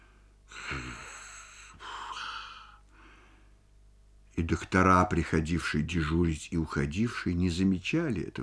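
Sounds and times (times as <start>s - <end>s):
voice imitating a man snoring: 0.5s - 2.3s
speech: 4.4s - 8.4s.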